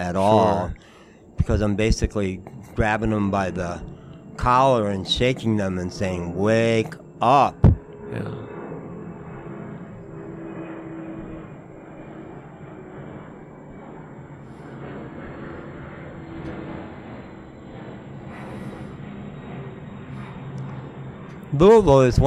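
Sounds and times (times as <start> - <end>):
speech: 0.0 - 0.8, 1.4 - 8.5, 21.5 - 22.2
airplane flying overhead: 0.0 - 22.2.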